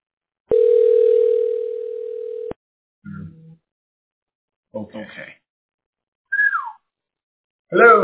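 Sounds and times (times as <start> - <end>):
electronic phone ringing tone: 0.5 - 2.6
speech: 4.8 - 5.4, 7.7 - 8.0.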